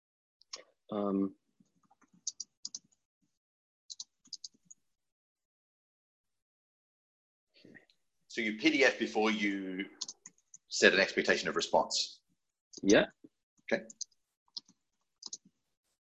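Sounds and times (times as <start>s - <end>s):
speech: 0.9s - 1.4s, 8.4s - 12.2s, 12.8s - 14.1s
computer keyboard typing while writing a message: 1.8s - 2.9s, 13.8s - 15.5s.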